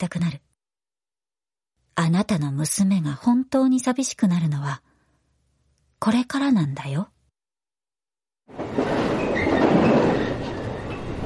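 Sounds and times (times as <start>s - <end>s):
speech: 0.0s - 0.4s, 2.0s - 4.9s, 6.0s - 7.1s, 8.5s - 9.2s
electric train rumbling and rattling along the rails: 8.5s - 11.2s.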